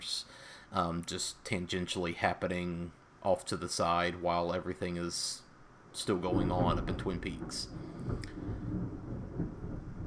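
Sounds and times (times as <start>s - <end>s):
speech: 0.7s - 5.4s, 6.0s - 8.9s
thunder rumbling during a storm: 6.2s - 10.0s.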